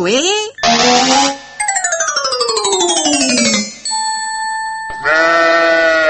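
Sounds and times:
speech: 0.0 - 1.4
steady ringing tone: 1.6 - 5.8
sheep bleating: 5.1 - 6.0.

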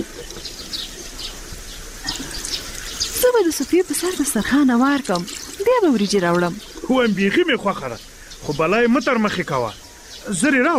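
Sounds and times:
warm water poured over hands for washing with soap: 2.0 - 6.9
speech: 3.4 - 10.7.

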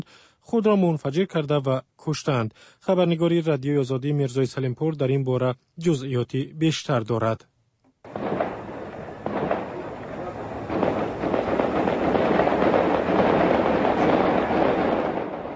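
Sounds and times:
speech: 0.0 - 7.5
gunfire at night in the hills around the old quarter of Kabul: 8.1 - 15.5.

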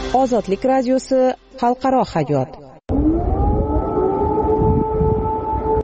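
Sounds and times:
speech: 0.1 - 2.6
air raid sirens wailing across Kyiv: 2.9 - 5.8.

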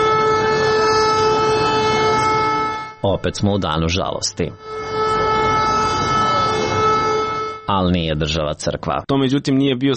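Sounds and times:
civil defence all-clear siren in Serbia: 0.0 - 7.8
speech: 3.0 - 4.9, 7.7 - 9.9.

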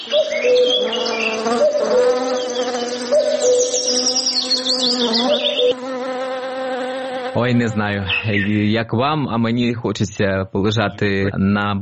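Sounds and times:
bees buzzing around a hive: 0.0 - 8.6
speech: 0.1 - 2.1, 7.4 - 11.8.

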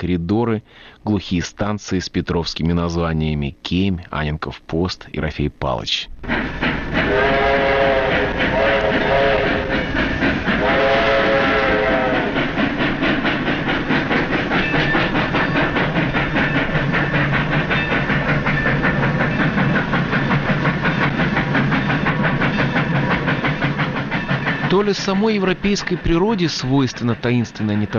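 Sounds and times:
speech: 0.0 - 7.4, 24.8 - 27.9
slow passenger train rumbling along the rails: 5.3 - 27.9
passenger train horn blasts: 7.0 - 9.7, 10.6 - 12.4.

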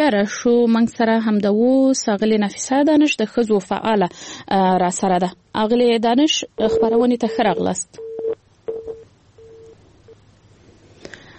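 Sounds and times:
faint hiss: 0.0 - 11.3
speech: 0.1 - 8.1
telephone line tones from a dropped call on a poor phone line: 6.7 - 9.8.

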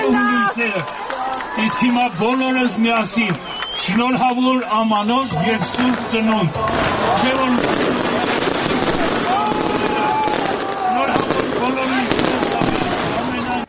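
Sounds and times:
crowd voices: 0.0 - 13.6
speech: 0.6 - 8.4
New Year fireworks at a tree-lighting celebration in the square in Vanadzor: 2.8 - 13.6.

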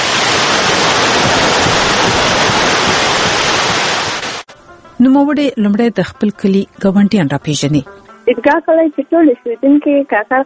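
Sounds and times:
loud constant rush of river water flowing past its bank: 0.0 - 4.5
speech: 5.0 - 10.4.

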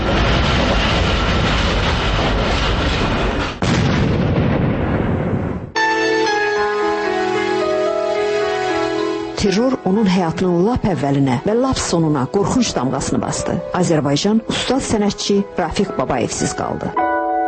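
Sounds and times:
metro train rumbling: 0.0 - 3.7, 5.8 - 16.8
sudden sharp burst: 0.0 - 9.5
sustained musical tones: 5.8 - 17.4
speech: 9.4 - 17.1.

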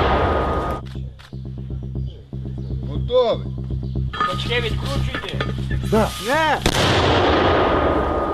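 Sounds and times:
steady rhythmic mechanical throbbing: 0.0 - 6.7
speech: 3.1 - 3.5, 4.3 - 7.5
mortar round firing with a booming blast: 6.6 - 8.3.

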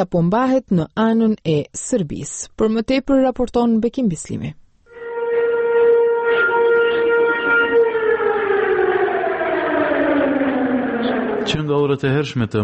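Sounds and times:
speech: 0.0 - 4.6, 11.5 - 12.6
civil defense alarm sirens wailing in northern Kosovo: 4.9 - 12.3.

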